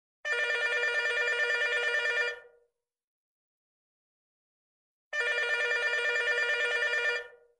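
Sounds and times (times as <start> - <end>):
telephone ringing: 0.3 - 2.5, 5.2 - 7.4.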